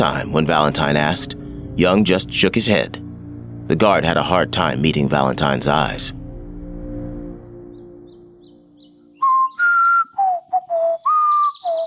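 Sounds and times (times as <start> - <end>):
speech: 0.0 - 3.0, 3.7 - 6.2
low rumbling background: 0.0 - 8.5
person whistling a short melodic tune: 9.2 - 11.8.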